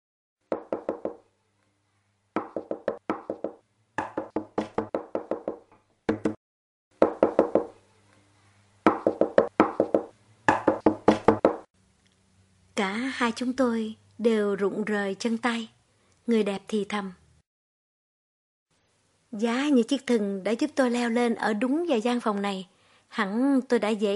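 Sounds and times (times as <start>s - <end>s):
urgent forceful knocking on a door: 0.5s - 1.2s, 2.4s - 6.4s, 7.0s - 7.7s, 8.9s - 11.7s
speech: 2.6s - 2.9s, 12.8s - 17.2s, 19.3s - 24.1s.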